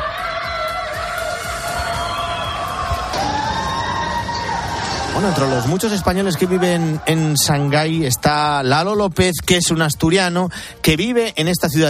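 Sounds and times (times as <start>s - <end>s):
neighbours shouting from windows and balconies: 0.0s - 7.0s
speech: 5.2s - 11.8s.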